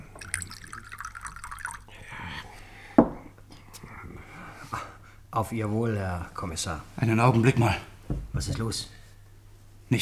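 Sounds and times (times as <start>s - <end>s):
sharp drip: 0.0s - 1.9s
water pouring into a glass: 0.0s - 2.0s
speech: 5.4s - 9.0s.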